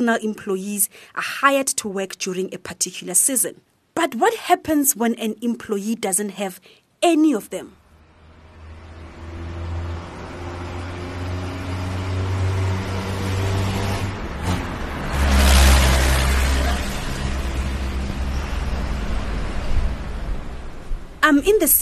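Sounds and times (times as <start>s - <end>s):
speech: 0.0s - 7.8s, 21.3s - 21.8s
steady traffic drone: 6.8s - 21.8s
heavy trucks rumbling in an industrial area of Kempton Park: 8.0s - 21.2s.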